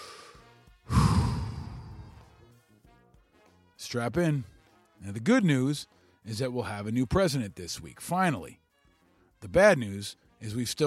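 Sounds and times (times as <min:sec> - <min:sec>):
long deep breath in and out: 0:00.0 - 0:02.4
speech: 0:03.9 - 0:08.6, 0:09.4 - 0:10.8.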